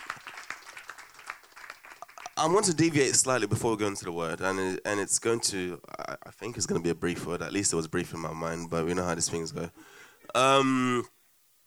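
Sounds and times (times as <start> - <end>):
crowd applauding: 0.0 - 2.9
speech: 2.4 - 11.1.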